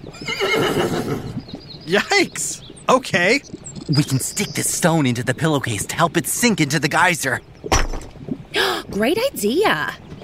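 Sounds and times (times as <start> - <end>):
horse neighing and whinnying: 0.1 - 1.4
speech: 1.9 - 7.5, 9.0 - 10.0.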